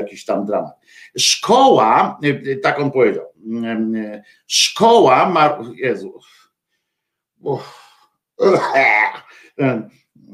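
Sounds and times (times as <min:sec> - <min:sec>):
speech: 0:00.0 - 0:06.4, 0:07.4 - 0:10.3
person clearing throat holding back a cough: 0:08.4 - 0:09.3.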